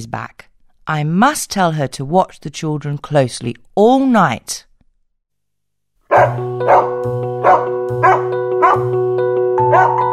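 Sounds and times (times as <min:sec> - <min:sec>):
speech: 0:00.0 - 0:04.7, 0:06.1 - 0:08.8
dog barking loudly: 0:06.1 - 0:08.9, 0:09.7 - 0:10.0.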